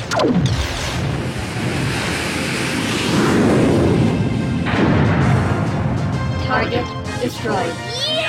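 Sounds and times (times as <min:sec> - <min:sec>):
sci-fi phaser fire zap: 0:00.0 - 0:06.0
speech: 0:00.2 - 0:01.1, 0:06.6 - 0:08.1.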